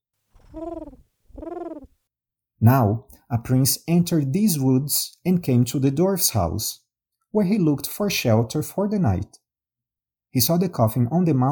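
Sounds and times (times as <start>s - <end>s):
dove cooing: 0.4s - 2.0s
speech: 2.6s - 9.4s, 10.3s - 11.5s.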